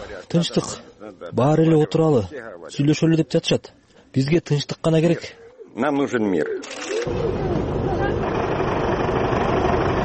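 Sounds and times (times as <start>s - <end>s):
speech: 0.2s - 7.8s
old bus engine starting and idling on the edge of a village: 7.1s - 10.0s.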